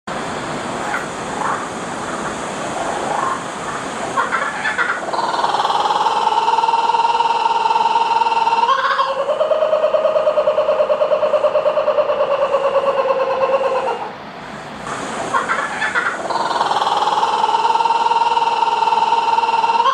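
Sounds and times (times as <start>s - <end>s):
Laughing Kookaburra calling: 0.9s - 14.2s, 15.2s - 19.9s.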